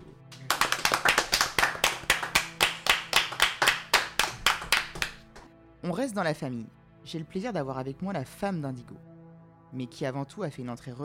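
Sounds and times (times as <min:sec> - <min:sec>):
hands clapping in applause: 0:00.3 - 0:05.5
speech: 0:05.8 - 0:09.1, 0:09.7 - 0:11.0.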